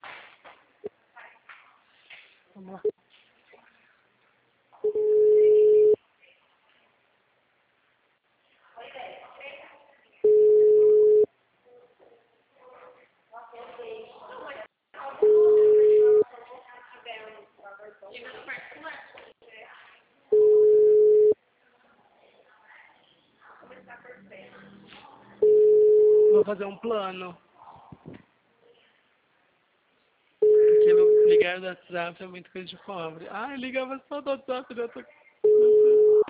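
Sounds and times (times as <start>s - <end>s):
speech: 2.6s - 3.0s, 26.5s - 27.5s, 31.6s - 35.2s
telephone busy signal while a call waits on hold: 4.8s - 6.0s, 10.2s - 11.3s, 15.2s - 16.2s, 20.3s - 21.4s, 25.4s - 26.4s, 30.4s - 31.4s, 35.4s - 36.2s
recorded voice speaking on a telephone hold line: 30.5s - 36.2s.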